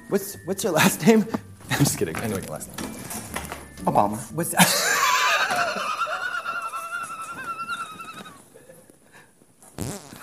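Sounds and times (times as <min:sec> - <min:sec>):
speech: 0:00.1 - 0:04.9
laughter: 0:04.6 - 0:08.4
long buzzy fart sound effect: 0:09.8 - 0:10.2.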